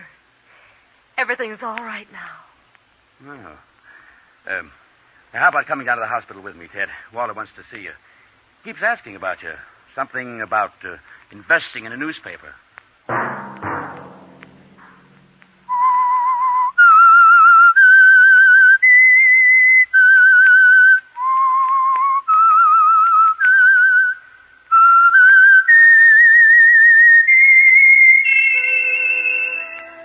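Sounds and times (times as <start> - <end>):
speech: 1.2 - 2.5, 3.2 - 3.7, 4.4 - 12.6
thump: 13.1 - 15.7
whistled theme tune: 15.7 - 30.0.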